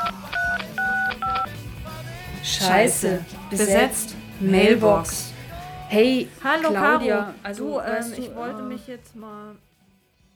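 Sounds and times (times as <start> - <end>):
touch-tone telephone keypad beeps as a number is dialed: 0.0 - 1.5
speech: 2.4 - 5.2, 5.9 - 9.7.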